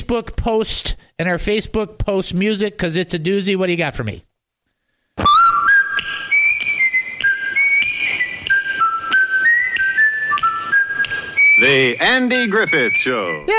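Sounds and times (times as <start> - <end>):
speech: 0.1 - 4.3, 11.6 - 13.5
loud bright whistled TV theme tune: 5.2 - 13.5.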